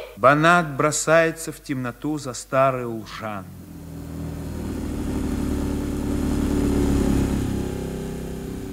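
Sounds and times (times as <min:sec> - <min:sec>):
speech: 0:00.2 - 0:03.6
car engine humming as the vehicle pulls away: 0:02.7 - 0:08.7.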